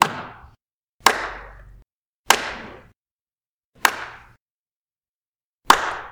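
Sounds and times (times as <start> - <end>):
really slow hand clapping: 0.0 - 2.8, 3.8 - 4.4, 5.7 - 6.1.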